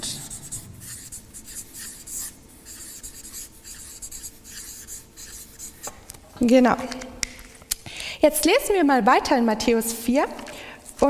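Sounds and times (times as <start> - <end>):
writing by hand during a Bible study session: 0.0 - 5.9
speech: 6.4 - 7.0, 8.2 - 10.4.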